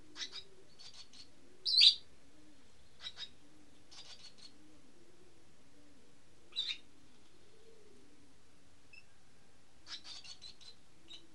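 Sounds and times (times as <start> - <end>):
bird calls as high chirps and buzzy bursts: 0.1 - 2.1, 2.9 - 4.5, 6.5 - 6.8, 9.9 - 11.2.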